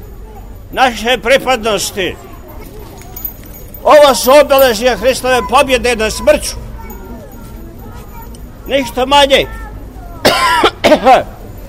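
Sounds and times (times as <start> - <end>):
faint noise: 0.0 - 11.6
speech: 0.7 - 2.3, 3.8 - 6.7, 8.7 - 9.6, 10.4 - 11.3
person coughing: 10.2 - 11.2.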